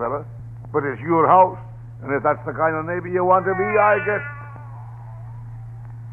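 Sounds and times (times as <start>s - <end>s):
speech: 0.0s - 4.4s
steady low hum: 0.0s - 6.1s
cat meowing: 3.4s - 5.7s.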